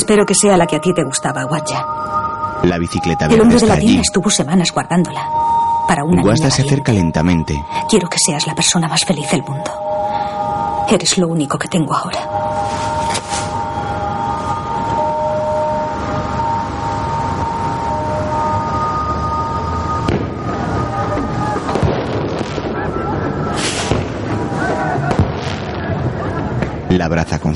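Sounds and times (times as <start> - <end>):
steady wavering high drone: 0.0 - 21.2
speech: 0.1 - 10.0, 10.9 - 13.3, 27.0 - 27.5
fireworks set off at a family wedding celebration at a grandmother's house: 12.6 - 13.7, 20.1 - 26.8.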